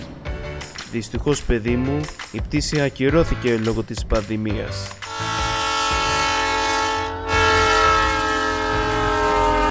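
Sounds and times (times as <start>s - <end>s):
train rumbling past: 0.0s - 1.8s, 5.1s - 9.6s
speech: 0.9s - 5.0s
train horn blaring a loud sustained chord: 5.0s - 9.6s.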